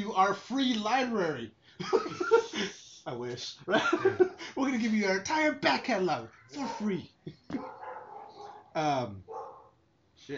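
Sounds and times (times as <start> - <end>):
speech: 0.2 - 7.6, 8.8 - 9.4
laughter: 1.8 - 2.8, 3.7 - 4.6
dog barking: 6.4 - 7.0, 7.6 - 9.8.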